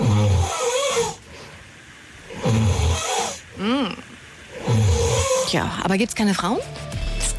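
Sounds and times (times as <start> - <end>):
man snoring loudly while asleep in Fensterwalde Brandenburg: 0.0 - 1.2, 2.3 - 5.6
speech: 5.5 - 7.3.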